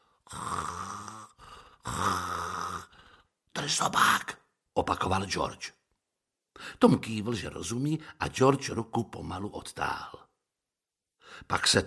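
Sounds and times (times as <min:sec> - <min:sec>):
person snoring while asleep: 0:00.0 - 0:03.3
speech: 0:03.6 - 0:05.8, 0:06.6 - 0:10.2, 0:11.3 - 0:11.8.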